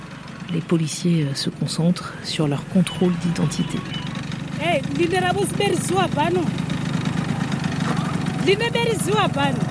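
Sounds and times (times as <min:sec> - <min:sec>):
small scooter engine idling: 0:00.0 - 0:09.6
speech: 0:00.5 - 0:06.8, 0:08.4 - 0:09.6.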